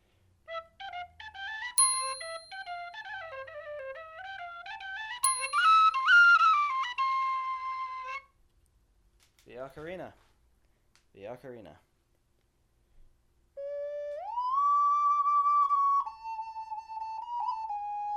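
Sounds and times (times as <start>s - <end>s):
typewriter whistle playing a quick stepping tune: 0.6s - 8.2s, 13.6s - 18.1s
sharp bell-like dings: 1.8s - 3.0s, 5.2s - 6.2s
speech: 9.7s - 10.3s, 11.2s - 11.9s.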